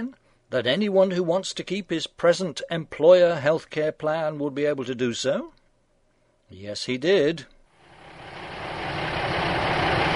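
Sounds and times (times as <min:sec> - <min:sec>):
speech: 0:00.0 - 0:05.6, 0:06.5 - 0:07.5
heavy bus engine idling: 0:07.8 - 0:10.1.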